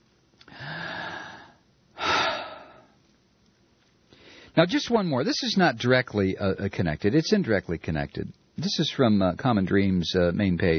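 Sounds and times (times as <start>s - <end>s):
deep breath: 0.5s - 3.0s, 4.1s - 4.6s
speech: 4.6s - 10.7s.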